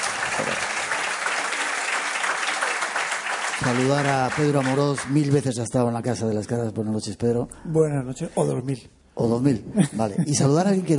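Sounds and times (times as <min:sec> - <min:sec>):
studio audience applauding: 0:00.0 - 0:05.5
speech: 0:03.6 - 0:10.9.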